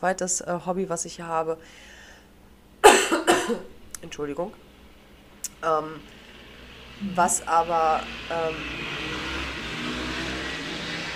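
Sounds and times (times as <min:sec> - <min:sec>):
speech: 0:00.0 - 0:02.0, 0:03.5 - 0:04.6, 0:05.4 - 0:06.2, 0:07.0 - 0:09.2
group of motorcycles of a motorcycle gang passing: 0:06.0 - 0:11.1.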